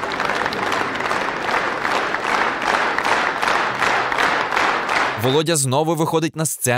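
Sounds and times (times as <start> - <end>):
faint crowd murmur: 0.0 - 5.2
audience applause at a concert: 0.0 - 5.7
speech: 5.2 - 6.7.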